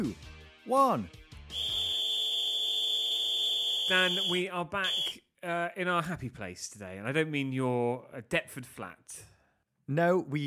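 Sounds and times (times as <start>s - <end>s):
speech: 0.0s - 1.8s, 3.9s - 9.3s, 9.9s - 10.4s
referee's whistle blast: 1.5s - 5.2s.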